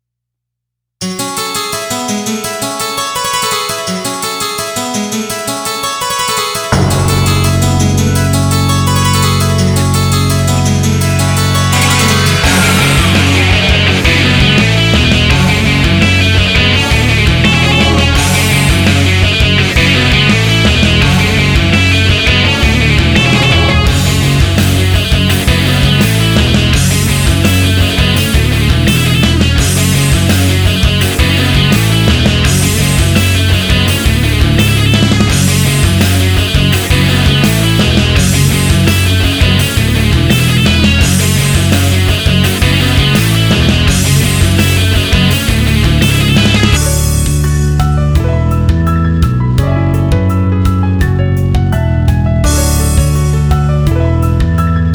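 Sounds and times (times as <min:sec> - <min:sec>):
instrumental off vocal backing track: 0:01.0 - 0:54.9.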